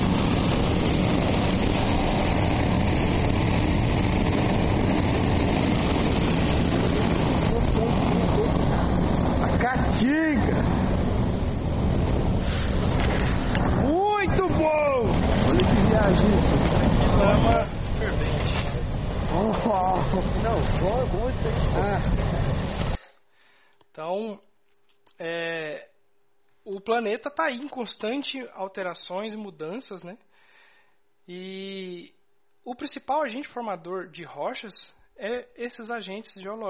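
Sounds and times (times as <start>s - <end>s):
volcanic gas venting under high pressure at a volcano in Bolivia: 0.0s - 23.2s
speech: 26.9s - 30.3s, 31.3s - 36.6s.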